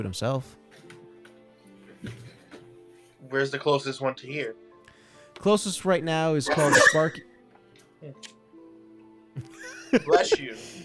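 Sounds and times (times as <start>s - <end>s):
speech: 0.0s - 0.9s, 2.0s - 2.2s, 3.2s - 4.6s, 5.4s - 7.3s, 8.0s - 8.4s, 9.4s - 10.8s
sneeze: 6.5s - 7.2s
laughter: 9.4s - 10.8s.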